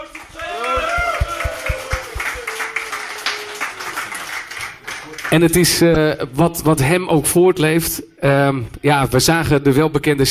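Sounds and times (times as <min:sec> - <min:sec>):
crowd clapping at a cycling event: 0:00.0 - 0:05.8
raised voices whooping: 0:00.3 - 0:04.4
speech: 0:05.3 - 0:10.2.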